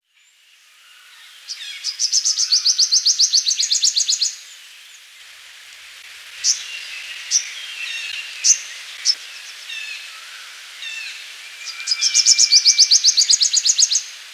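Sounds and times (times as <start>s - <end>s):
purple sunbird song with sharp chips and rattling trill: 1.1s - 4.5s, 6.4s - 10.2s, 10.8s - 14.2s
speech: 1.5s - 4.1s.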